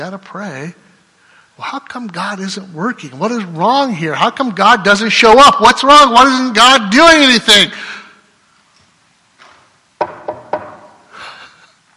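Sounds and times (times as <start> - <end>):
speech: 0.0 - 0.9, 1.6 - 7.9
knocking on a wooden door: 10.0 - 10.9.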